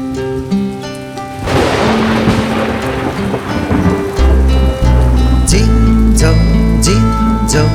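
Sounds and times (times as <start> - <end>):
musical tones: 0.0 - 7.7
rain hissing: 0.0 - 7.7
deep rolling thunder: 1.3 - 7.7.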